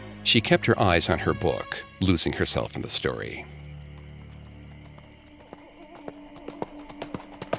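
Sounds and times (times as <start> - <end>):
speech: 0.2 - 3.6
low hum: 2.1 - 7.4
horse hooves clip-clopping: 2.2 - 7.5.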